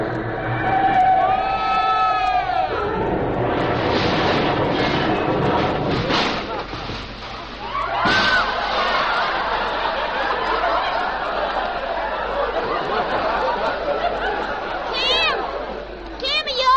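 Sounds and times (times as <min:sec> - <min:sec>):
train cars rolling by on the tracks: 0:00.0 - 0:15.8
crowd laughing: 0:04.8 - 0:07.0, 0:07.6 - 0:16.6.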